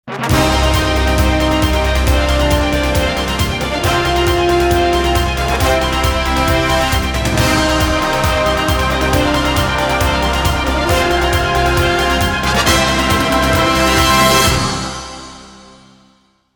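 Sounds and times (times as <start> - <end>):
brass bang: 0.0 - 16.3.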